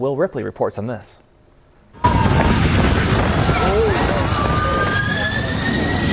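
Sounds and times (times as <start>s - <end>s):
speech: 0.0s - 1.3s
airliner jet engines roaring during aborted landing: 1.9s - 6.1s
heavy rumbling wind noise in strong crosswinds: 1.9s - 6.1s.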